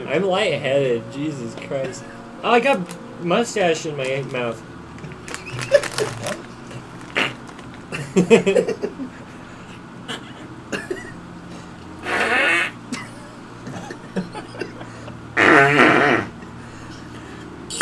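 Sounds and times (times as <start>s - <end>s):
speech: 0.1s - 4.7s, 8.2s - 9.2s
sputtering buzzy fart noises blown with the mouth: 7.1s - 7.5s, 12.0s - 12.8s, 15.4s - 16.4s.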